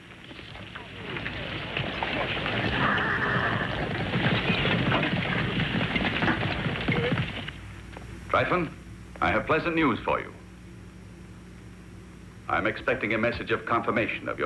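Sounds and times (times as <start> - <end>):
indistinct voices: 0.0 - 7.5
hooves of a company of horses clattering: 0.0 - 8.3
horse whinnying: 0.5 - 7.5
speech: 8.4 - 10.4, 12.5 - 14.4.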